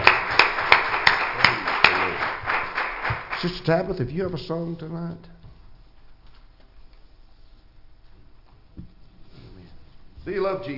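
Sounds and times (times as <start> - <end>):
church audience clapping in praise: 0.0 - 4.0
speech: 3.4 - 5.3, 10.3 - 10.7.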